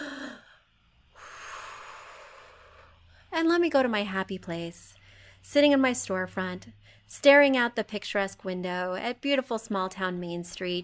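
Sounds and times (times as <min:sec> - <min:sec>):
deep cleansing breath: 0:00.0 - 0:03.3, 0:05.0 - 0:05.4
speech: 0:03.4 - 0:10.8.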